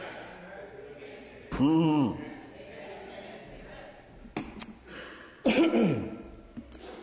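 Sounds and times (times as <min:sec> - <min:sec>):
coughing and throat clearing: 0:05.4 - 0:07.0.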